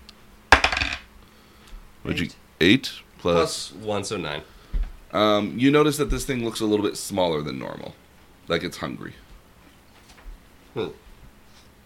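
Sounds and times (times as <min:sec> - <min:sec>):
dice clattering across a hard surface: 0:00.5 - 0:01.1
speech: 0:02.0 - 0:09.2, 0:10.8 - 0:11.0.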